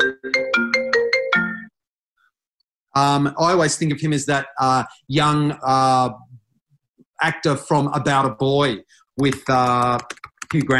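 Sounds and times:
mobile phone ringtone playing a quick electronic melody: 0.0 - 1.8
speech: 3.0 - 6.3, 7.2 - 10.7.

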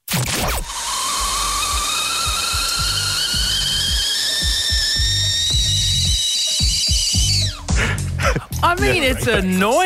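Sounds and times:
kettle high-pitched piercing whistle: 0.5 - 7.8
speech: 8.8 - 9.8.

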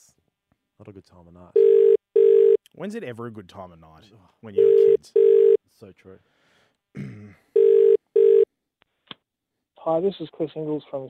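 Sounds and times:
speech: 0.8 - 2.0, 2.8 - 7.4, 9.8 - 11.0
telephone ringback tone while placing a call: 1.6 - 2.6, 4.6 - 5.6, 7.6 - 8.5.

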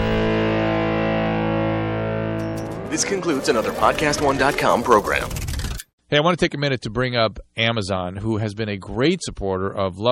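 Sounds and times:
outro music with heavily distorted buzzing sustained chord: 0.0 - 5.7
speech: 2.9 - 5.4, 6.1 - 10.1.

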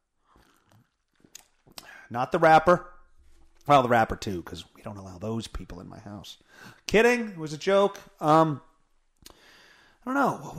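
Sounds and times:
person sipping iced tea: 0.2 - 2.0
soft crunchy clicks: 0.5 - 1.9
speech: 2.1 - 2.9, 3.7 - 9.4, 10.0 - 10.5.

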